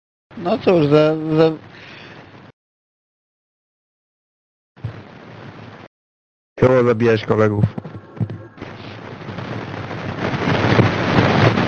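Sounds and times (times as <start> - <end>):
speech: 0.4 - 1.7, 6.6 - 7.9
video game grenade explosions thrown by several players on a game server: 7.6 - 11.6.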